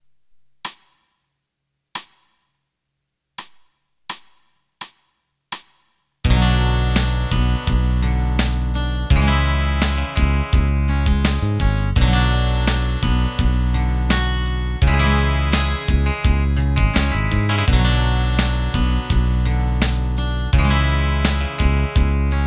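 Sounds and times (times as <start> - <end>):
rock ballad: 6.3 - 22.4.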